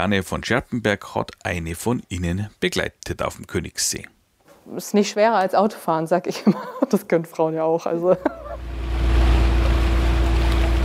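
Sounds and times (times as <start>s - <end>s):
speech: 0.0s - 8.7s
laughter: 6.3s - 7.1s, 7.9s - 8.6s
small passenger boat engine droning while motoring out of a boathouse on the Königssee lake: 8.4s - 10.8s.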